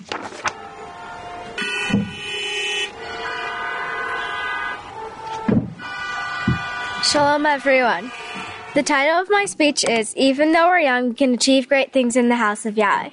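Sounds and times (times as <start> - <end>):
steady traffic-like rumble: 0.0 - 13.1
several car horns honking outdoors: 0.5 - 9.5
brief thumps: 1.8 - 2.2, 5.2 - 6.8
speech: 7.1 - 13.1.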